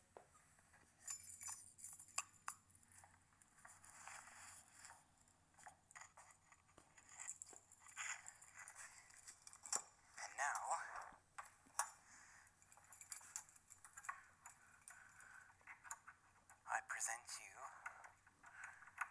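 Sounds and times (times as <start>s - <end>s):
keys dropped and clattering on a hard floor: 0.7s - 16.6s, 17.9s - 19.1s.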